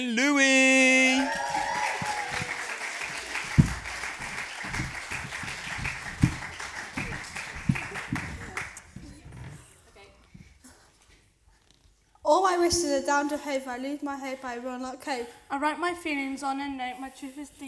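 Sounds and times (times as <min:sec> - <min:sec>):
speech: 0:00.0 - 0:00.6, 0:13.0 - 0:17.6
audience applause at a school poetry festival showcase: 0:01.0 - 0:08.8.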